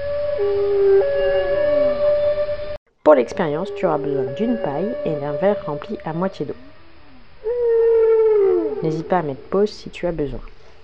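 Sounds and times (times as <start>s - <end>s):
whale song: 0.0s - 9.0s
speech: 0.4s - 0.8s, 3.1s - 6.7s, 8.8s - 10.5s.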